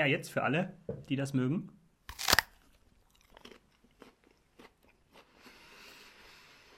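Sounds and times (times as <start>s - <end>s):
speech: 0.0s - 1.8s
crunch of biting a crisp Conference pear: 2.1s - 5.5s.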